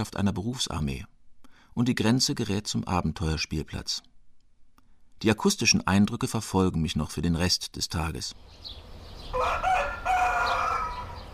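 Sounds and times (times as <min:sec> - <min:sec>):
speech: 0:00.0 - 0:01.1, 0:01.8 - 0:04.1, 0:05.2 - 0:08.8
rooster crowing in the morning: 0:09.2 - 0:11.3.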